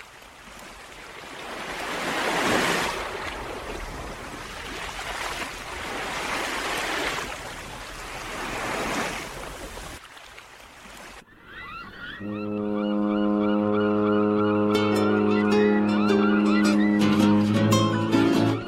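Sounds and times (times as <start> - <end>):
rushing sea noise: 0.0 - 18.6
deep ship's horn of an approaching ship: 12.2 - 17.9.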